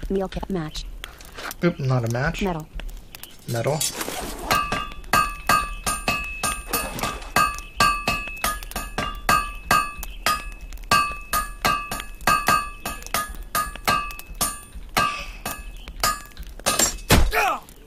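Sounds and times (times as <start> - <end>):
speech: 0.1 - 0.9, 1.6 - 2.8, 3.5 - 4.0
hammer striking: 4.5 - 17.3.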